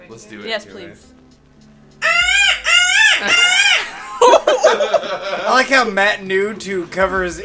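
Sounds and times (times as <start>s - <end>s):
speech: 0.1s - 1.2s, 3.2s - 3.5s, 4.7s - 7.4s
person imitating a peacock call with nasal cries and squawks: 2.0s - 3.9s
laughter: 3.0s - 5.9s.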